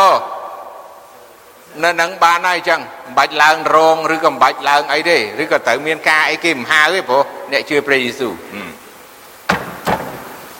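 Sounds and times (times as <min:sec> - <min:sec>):
faint steady hiss: 0:00.0 - 0:10.5
speech: 0:01.8 - 0:08.8
sharp knocks on a hard surface: 0:09.5 - 0:10.3.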